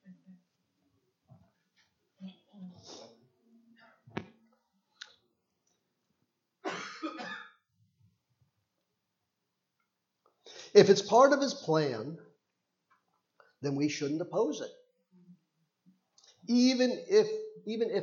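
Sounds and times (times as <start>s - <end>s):
person coughing: 6.7s - 7.6s
speech: 10.7s - 12.3s, 13.6s - 14.8s, 16.5s - 18.0s.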